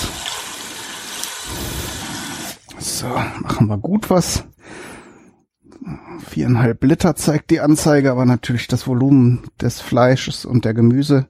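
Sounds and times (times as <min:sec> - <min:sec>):
water gushing from a wall tap into a pressure cooker pot: 0:00.0 - 0:02.7
speech: 0:02.8 - 0:04.5, 0:06.3 - 0:11.2.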